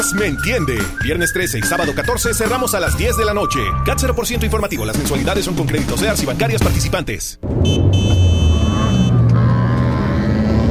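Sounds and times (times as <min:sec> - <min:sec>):
speech: 0:00.0 - 0:08.2
car engine rumbling while overtaking on the right: 0:07.4 - 0:10.6
steady high electronic tone: 0:07.6 - 0:09.2.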